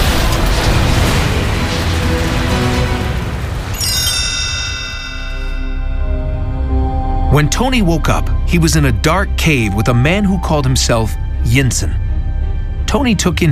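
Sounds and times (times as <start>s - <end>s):
huge explosion with heavy low rumble: 0.0s - 6.2s
high sustained metallic ringing: 3.8s - 6.9s
speech: 7.4s - 12.0s, 12.9s - 13.5s.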